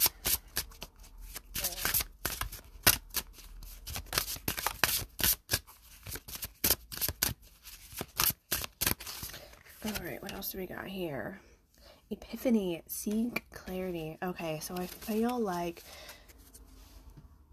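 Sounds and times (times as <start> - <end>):
deck of cards being shuffled: 0.0 - 10.4, 14.7 - 16.6
speech: 10.4 - 11.5, 12.1 - 16.0.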